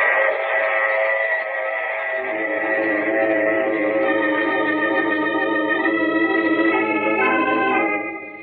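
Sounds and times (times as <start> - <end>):
loud sustained train whistle: 0.1 - 8.4
low rumble of a running train: 2.1 - 5.8.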